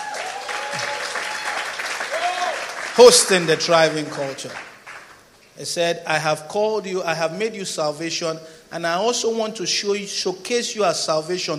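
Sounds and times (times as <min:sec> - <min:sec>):
church congregation applause: 0:00.0 - 0:05.2
speech: 0:00.8 - 0:01.0, 0:03.0 - 0:04.8, 0:05.6 - 0:11.5.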